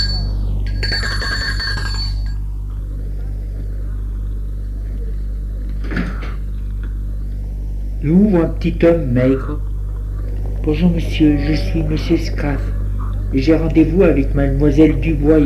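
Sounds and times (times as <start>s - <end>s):
bell ringing at the gate of a retirement home: 0.0s - 2.4s
steady low hum: 0.0s - 15.4s
speech: 8.1s - 9.7s, 10.6s - 15.4s.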